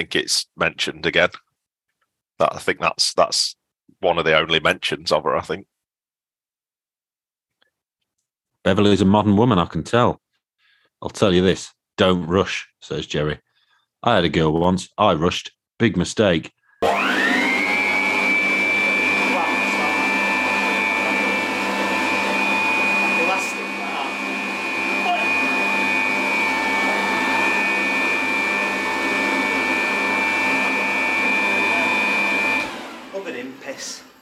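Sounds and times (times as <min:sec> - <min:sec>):
speech: 0:00.0 - 0:01.4, 0:02.4 - 0:05.7, 0:08.6 - 0:10.2, 0:11.0 - 0:17.0
electric hand dryer running: 0:16.8 - 0:34.2.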